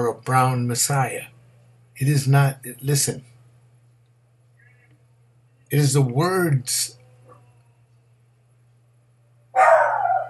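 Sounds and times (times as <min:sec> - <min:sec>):
faint steady low hum: 0:00.0 - 0:10.2
speech: 0:00.1 - 0:01.4, 0:02.0 - 0:03.3, 0:05.7 - 0:07.0
dog barking: 0:09.6 - 0:10.2.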